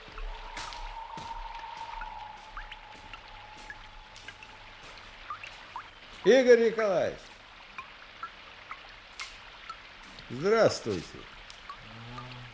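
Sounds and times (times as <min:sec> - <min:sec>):
drips splashing in the gateway of a Moscow building: 0:00.0 - 0:12.5
steady rain in the gateway of a Moscow building: 0:00.0 - 0:12.5
speech: 0:06.2 - 0:07.3, 0:10.3 - 0:11.3.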